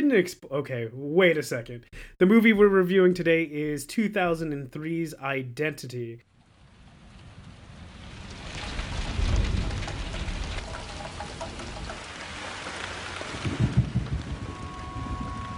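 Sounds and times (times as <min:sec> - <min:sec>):
speech: 0:00.1 - 0:06.3
steady rain: 0:06.3 - 0:15.5
deep rumbling thunder rolls: 0:06.5 - 0:15.5.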